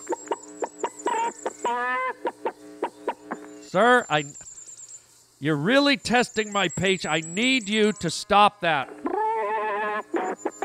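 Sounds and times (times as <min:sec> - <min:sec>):
person imitating a chicken clucking and squawking: 0:01.1 - 0:02.6, 0:08.7 - 0:10.6
speech: 0:03.7 - 0:04.4, 0:05.4 - 0:09.0.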